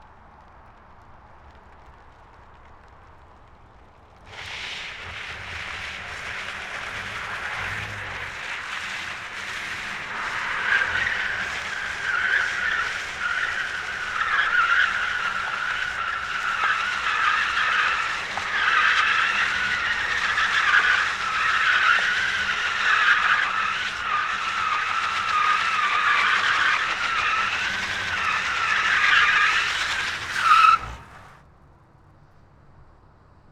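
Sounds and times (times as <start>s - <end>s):
drift: 4.2s - 31.4s.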